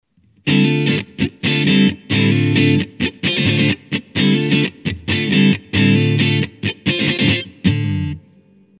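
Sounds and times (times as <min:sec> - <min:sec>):
Yamaha Strat electric guitar on neck pickup with EQ high boost: 0:00.2 - 0:08.7.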